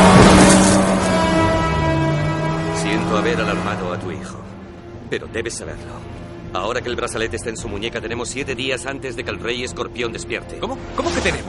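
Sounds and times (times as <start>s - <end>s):
car driving through rain with road noise: 0.0s - 4.9s
speech: 3.4s - 4.5s, 5.1s - 11.4s.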